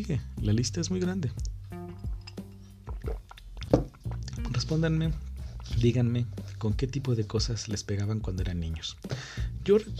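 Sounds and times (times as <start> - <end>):
speech: 0.0 - 1.5, 4.7 - 9.9
water being poured or sipped: 1.8 - 4.5
short wet bursts and squishy gulps: 2.8 - 4.4.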